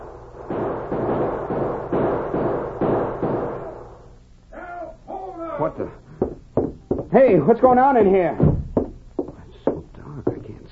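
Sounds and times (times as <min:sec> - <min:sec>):
gunshots inside a bank: 0:00.0 - 0:04.0
speech: 0:05.6 - 0:06.0, 0:07.1 - 0:08.5.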